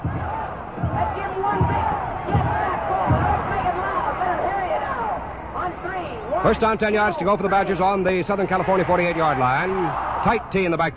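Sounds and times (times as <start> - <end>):
constant roar of football stadium crowd noise: 0.0 - 5.3, 8.2 - 10.8
football stadium cheering section chanting go in unison: 0.0 - 5.8
speech: 6.4 - 10.9.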